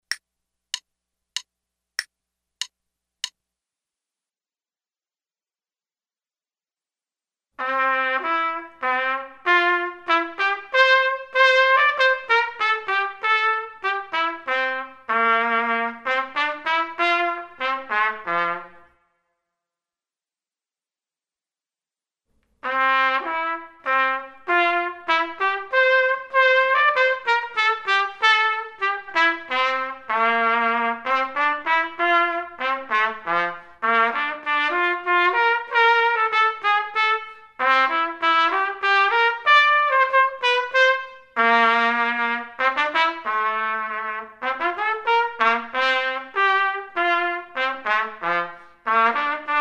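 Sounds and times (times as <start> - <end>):
trumpet playing a minuet: 7.6 - 19.0, 22.6 - 49.5.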